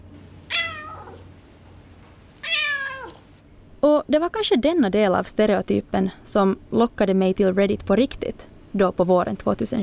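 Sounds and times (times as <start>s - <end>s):
low steady hum: 0.0s - 9.8s
cat meowing: 0.5s - 1.2s, 2.4s - 3.2s
speech: 4.1s - 9.8s.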